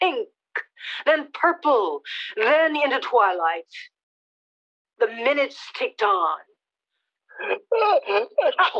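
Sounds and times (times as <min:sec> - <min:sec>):
speech: 0:01.0 - 0:04.0, 0:05.0 - 0:06.5, 0:07.4 - 0:08.7
person imitating a sneeze with voiced bursts: 0:07.4 - 0:08.7.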